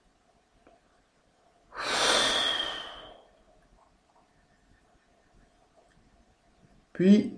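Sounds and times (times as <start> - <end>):
slow deep inhale then forceful rapid exhale: 1.7 - 3.3
speech: 7.0 - 7.3.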